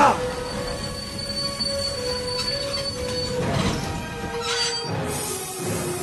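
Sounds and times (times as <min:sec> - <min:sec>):
train wheels squealing while braking hard: 0:00.2 - 0:05.7.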